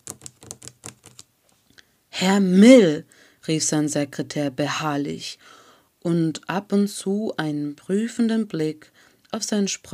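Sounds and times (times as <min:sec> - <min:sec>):
fingers typing on a laptop keyboard: 0:00.0 - 0:01.3
speech: 0:02.2 - 0:09.9.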